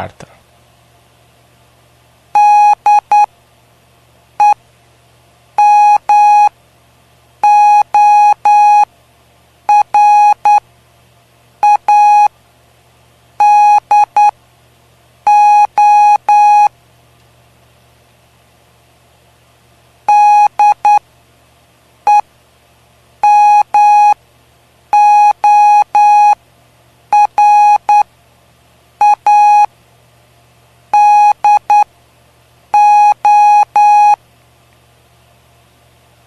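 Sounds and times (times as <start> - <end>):
speech: 0.0 - 0.3
faint hum: 0.0 - 36.2
electronic tone keying out Morse code: 2.4 - 3.3, 5.6 - 6.5, 7.4 - 8.8, 9.7 - 10.6, 11.6 - 12.3, 13.4 - 14.3, 15.3 - 16.7, 20.1 - 21.0, 23.2 - 24.2, 25.0 - 26.4, 27.1 - 28.0, 29.0 - 29.7, 31.0 - 31.9, 32.8 - 34.2.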